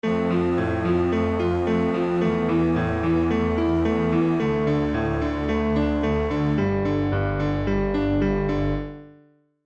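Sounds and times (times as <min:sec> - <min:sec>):
sad piano music: 0:00.0 - 0:09.4.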